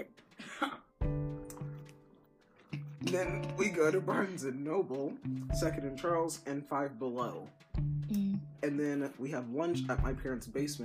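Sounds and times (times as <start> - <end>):
speech: 0.0 - 0.8, 3.1 - 10.8
person clearing throat: 0.4 - 0.9.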